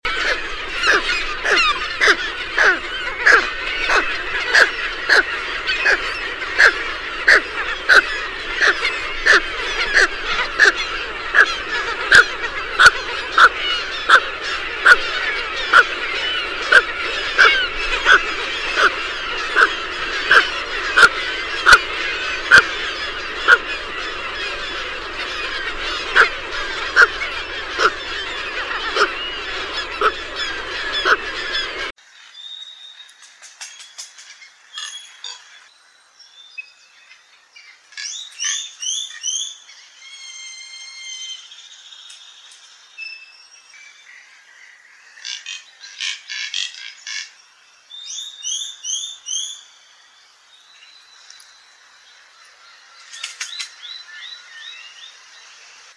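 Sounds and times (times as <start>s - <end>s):
pelican calling: 0.1s - 31.9s.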